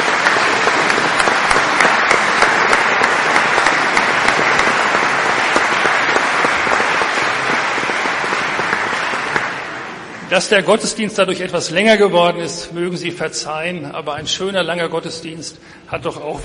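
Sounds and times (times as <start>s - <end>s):
audience applauding: 0.0s - 10.9s
speech: 10.3s - 16.4s.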